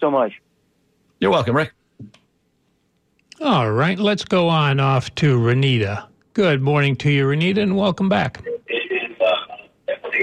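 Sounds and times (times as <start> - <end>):
speech: 0.0 - 0.5, 1.2 - 2.2, 3.4 - 8.5
tinny voices from a caller's radio through a phone line: 8.4 - 10.2.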